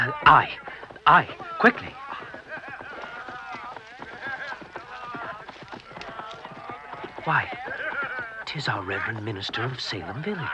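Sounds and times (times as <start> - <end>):
hooves of three horses clip-clopping along a road near a colonial village: 0.0 - 10.5
laughter: 0.0 - 10.5
speech: 0.1 - 2.0, 7.2 - 7.8, 8.5 - 10.5.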